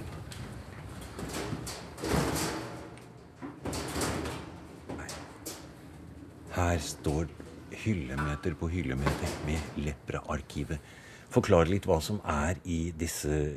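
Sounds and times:
heavy archive door sliding and thudding shut: 0:00.0 - 0:10.0
speech: 0:06.6 - 0:13.5.

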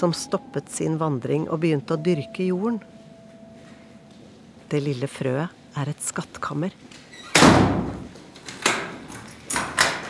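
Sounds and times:
speech: 0:00.0 - 0:02.9, 0:04.7 - 0:07.8
heavy airlock doors of a freezer-cold seed store opening and closing: 0:07.3 - 0:10.0.

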